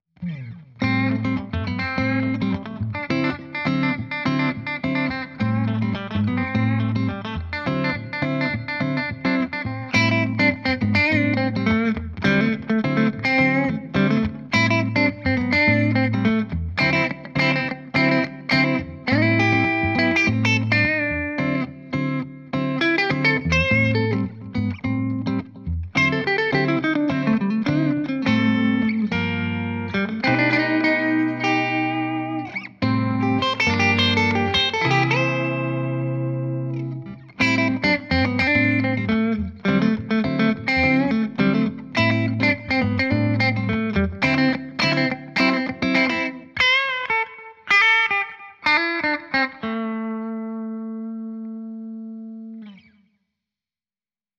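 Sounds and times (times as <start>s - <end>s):
rhythm guitar: 0.2s - 52.9s.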